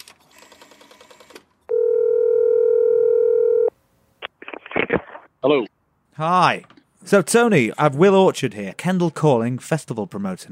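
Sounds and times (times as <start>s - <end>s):
loud steady telephone dial tone: 1.7s - 3.7s
speech: 5.4s - 10.4s.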